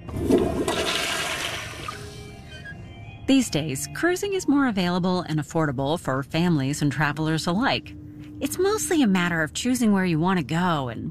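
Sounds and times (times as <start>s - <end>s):
toilet flushing: 0.0s - 2.4s
speech: 3.3s - 11.0s.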